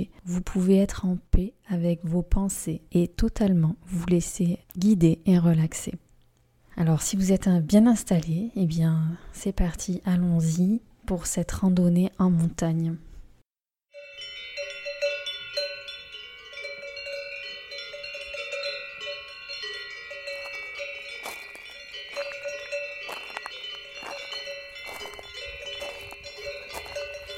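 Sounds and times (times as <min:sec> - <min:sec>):
speech: 0:00.0 - 0:06.0, 0:06.8 - 0:13.1
cowbells clanking on alpine mountain pastures along a stony trail: 0:14.0 - 0:27.3.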